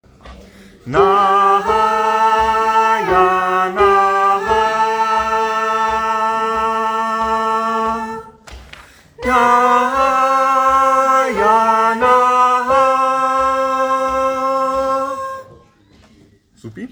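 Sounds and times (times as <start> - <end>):
gospel choir soprano voices singing: 0.7 - 15.7.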